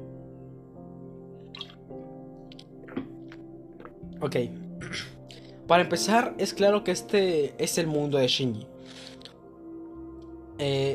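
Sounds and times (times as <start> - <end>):
person drinking water with wet gulps: 2.5 - 4.0
speech: 4.2 - 9.1, 10.6 - 10.9.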